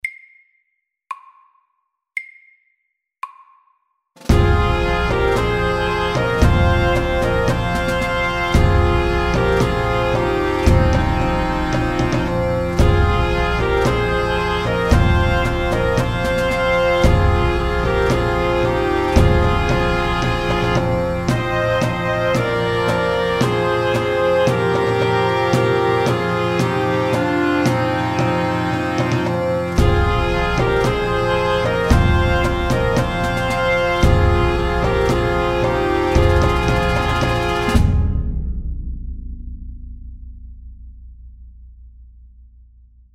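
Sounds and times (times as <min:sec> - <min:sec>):
drums: 0:04.2 - 0:41.0
bagpipes playing: 0:04.3 - 0:37.9.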